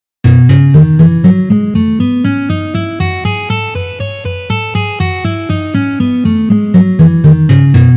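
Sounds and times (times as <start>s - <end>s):
E major scale in first position: 0.3s - 7.9s.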